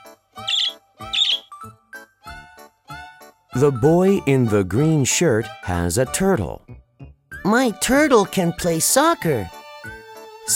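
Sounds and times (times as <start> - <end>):
small bird singing in chirps and trills: 0.4 - 1.6
speech: 3.6 - 6.8, 7.4 - 9.6.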